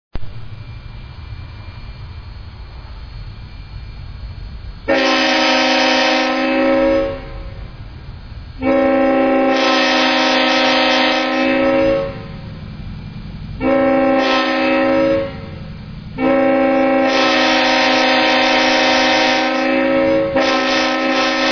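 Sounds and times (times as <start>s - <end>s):
Leslie rotary speaker horn: 4.9s - 7.6s, 8.6s - 12.5s, 13.6s - 21.5s.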